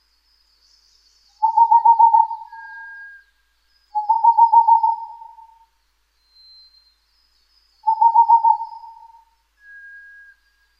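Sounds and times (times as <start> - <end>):
Boreal Owl giving trills of level hoots: 1.4 - 3.0, 4.0 - 5.7, 7.8 - 9.4
quiet thin whistle: 1.4 - 4.0, 5.6 - 10.7.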